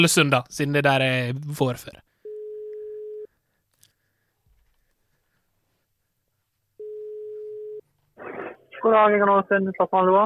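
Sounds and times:
speech: 0.0 - 2.1, 8.8 - 10.2
telephone ringback tones on an outgoing call: 2.3 - 3.3, 6.8 - 7.8
brief noisy burst: 8.2 - 8.7.

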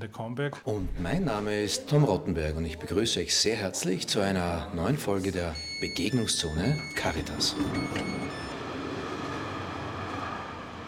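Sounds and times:
speech: 0.0 - 8.4
regional train rumbling at a railway station: 7.3 - 10.8.

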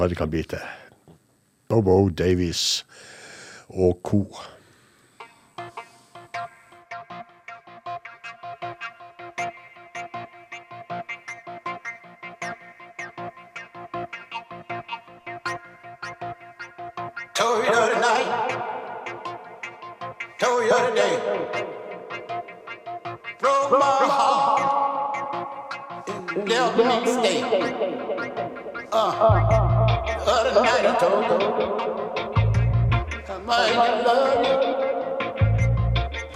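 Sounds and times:
speech: 0.0 - 0.8, 1.7 - 3.1, 3.7 - 4.6
electro blues remix: 4.6 - 36.3
sustained melodic tones: 17.6 - 36.3
steady punchy electronic beat: 27.6 - 33.3.

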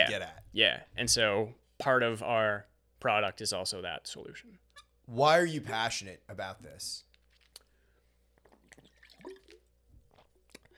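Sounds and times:
speech: 0.0 - 7.1
person sipping water with soft slurps and swallowing clicks: 7.1 - 10.7.

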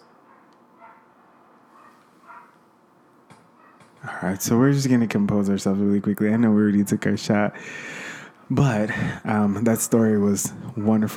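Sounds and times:
dog barking: 0.3 - 1.1, 1.7 - 2.6, 3.6 - 3.9
speech: 4.0 - 11.1.

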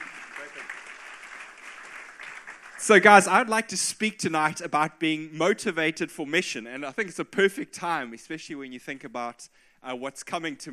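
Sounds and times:
audience applause: 0.0 - 3.3
speech: 2.8 - 10.7.

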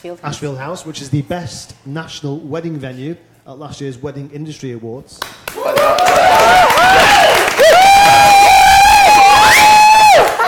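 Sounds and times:
speech: 0.0 - 8.3
dense applause: 5.2 - 10.4
large live crowd cheering and whooping: 5.5 - 10.4.

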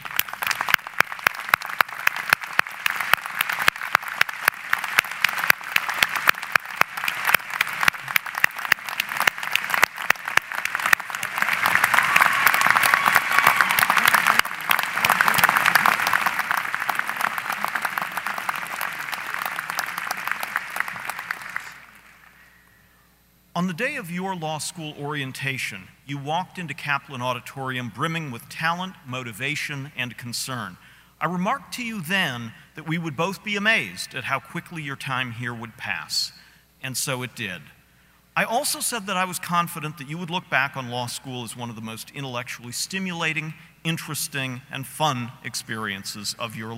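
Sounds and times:
large crowd applauding at a law school graduation: 0.0 - 22.4
speech: 23.6 - 37.8, 38.4 - 46.7.

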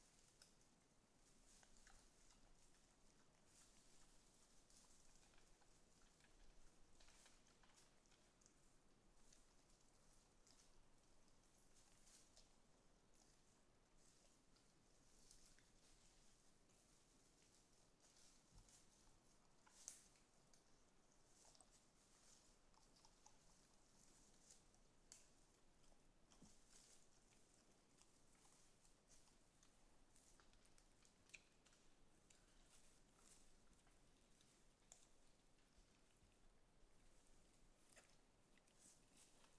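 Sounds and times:
soft outdoor hiss: 0.0 - 39.5
wild boar feeding with rustling and crunches: 0.0 - 39.5.

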